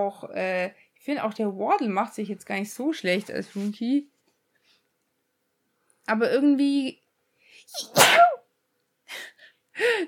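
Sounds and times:
speech: 0.0s - 4.1s, 6.1s - 7.0s, 7.6s - 8.3s
person sneezing: 7.7s - 8.4s.

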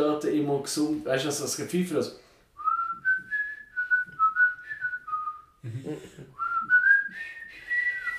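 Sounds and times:
speech: 0.2s - 2.3s
person whistling a film theme melody: 2.6s - 5.6s, 6.4s - 8.1s.

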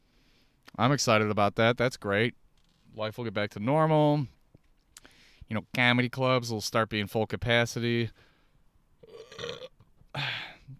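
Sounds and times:
speech: 0.8s - 4.4s, 5.5s - 8.3s
person burping: 9.0s - 10.7s.

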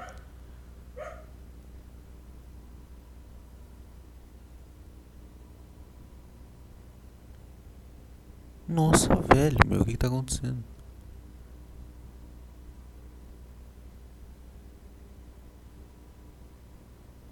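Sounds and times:
dog barking: 0.0s - 0.2s, 1.0s - 1.3s
steady low hum and hiss: 0.0s - 17.2s
speech: 8.7s - 10.7s.

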